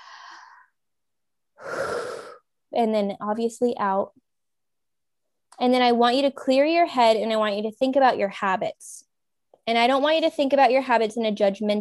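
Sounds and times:
deep breath in: 0.0 - 0.7, 1.6 - 2.4
speech: 2.8 - 4.2, 5.6 - 11.7.

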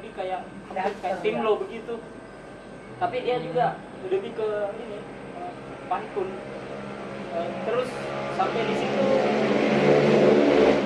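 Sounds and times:
speech: 0.2 - 2.2, 3.0 - 5.2, 5.9 - 6.6, 7.3 - 10.0
motorcycle engine droning as it passes by: 2.9 - 10.8.

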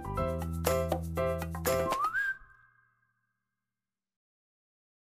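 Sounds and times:
rhythmic music: 0.0 - 2.2
referee's whistle blowing: 1.8 - 3.2.

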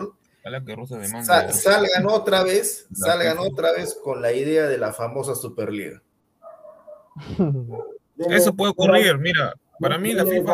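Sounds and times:
speech: 0.5 - 6.1, 7.2 - 10.5
dog barking for food: 3.7 - 4.2, 6.4 - 8.0
dog whining for food: 6.4 - 8.0.

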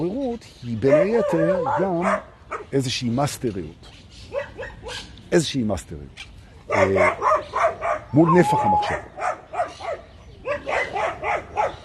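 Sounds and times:
speech: 0.0 - 4.0, 4.6 - 9.2
dogs barking excitedly in sharp yips: 0.8 - 2.8, 4.2 - 5.2, 6.7 - 11.8.

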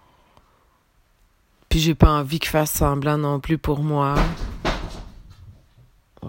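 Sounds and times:
quiet room noise: 0.0 - 6.2
speech: 1.8 - 4.5
cupboard door knocking and rattling from a cat playing: 4.1 - 5.7.

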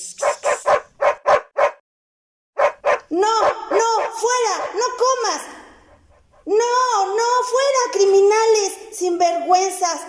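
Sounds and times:
dirty dog barking: 0.2 - 1.8, 2.6 - 5.2
speech: 3.1 - 3.5, 7.4 - 10.0.

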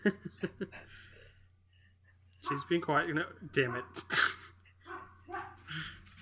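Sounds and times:
speech: 0.0 - 1.0, 2.4 - 4.3
dog barking: 2.4 - 2.7, 3.6 - 4.1, 4.8 - 5.7.

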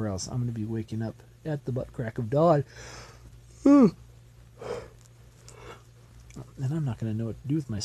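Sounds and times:
speech: 0.0 - 4.0, 6.4 - 7.8
breathy exhale: 2.7 - 3.2, 4.6 - 5.8
person yawning: 3.6 - 4.0, 4.6 - 4.9.

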